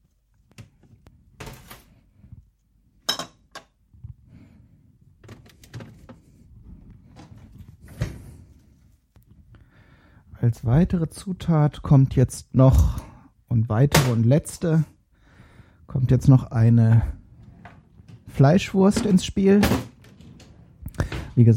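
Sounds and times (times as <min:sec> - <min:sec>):
refrigerator door opening and closing: 0:05.2 - 0:06.3, 0:16.9 - 0:21.5
speech: 0:10.4 - 0:15.0, 0:15.9 - 0:17.2, 0:18.4 - 0:19.9, 0:21.4 - 0:21.5.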